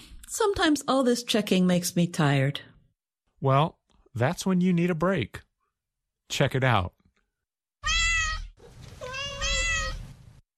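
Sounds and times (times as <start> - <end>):
speech: 0.4 - 2.7, 3.4 - 5.5, 6.3 - 7.0
cat meowing: 7.8 - 10.2.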